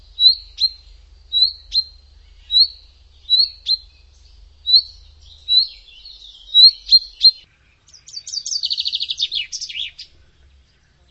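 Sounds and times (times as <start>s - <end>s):
bird singing: 0.0s - 11.0s.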